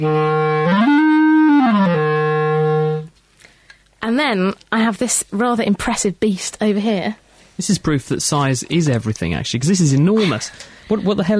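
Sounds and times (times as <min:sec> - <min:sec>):
speech: 0:00.0 - 0:00.4, 0:04.2 - 0:11.3
wooden B-flat clarinet playing sustained reedy notes: 0:00.0 - 0:03.1.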